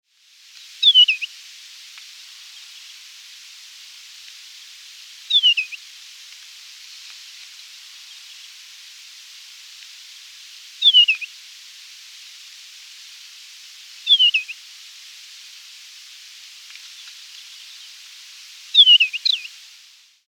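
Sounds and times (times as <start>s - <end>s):
northern wheatear singing: 0.8s - 1.3s, 5.3s - 5.8s, 10.8s - 11.3s, 14.1s - 14.6s, 18.8s - 19.5s.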